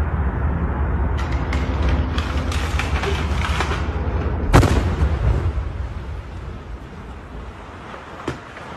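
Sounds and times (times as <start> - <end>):
steady noisy rumble: 0.0 - 8.7
house exploding in a residential neighborhood: 4.5 - 6.1.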